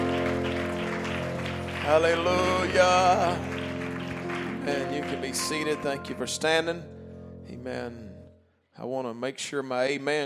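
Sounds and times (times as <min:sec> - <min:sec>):
crowd clapping: 0:00.0 - 0:06.5
sustained organ-like chord: 0:00.0 - 0:08.4
speech: 0:01.9 - 0:03.6, 0:04.7 - 0:08.1, 0:08.8 - 0:10.2.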